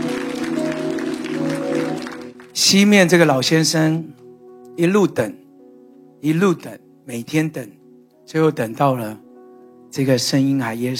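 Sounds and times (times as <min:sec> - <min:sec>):
congregation clapping during a church service: 0:00.0 - 0:03.3
speech: 0:02.6 - 0:04.2, 0:04.8 - 0:05.4, 0:06.2 - 0:09.2, 0:09.9 - 0:10.9.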